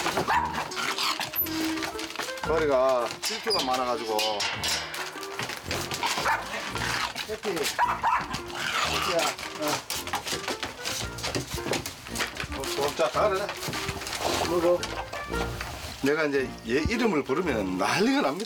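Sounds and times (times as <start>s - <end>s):
dogs whimpering: 0.0s - 2.5s, 5.7s - 12.4s, 13.2s - 16.1s
excited dogs barking and yipping: 0.0s - 16.1s
speech: 2.5s - 4.9s, 7.3s - 9.9s, 12.8s - 13.8s, 14.5s - 18.4s.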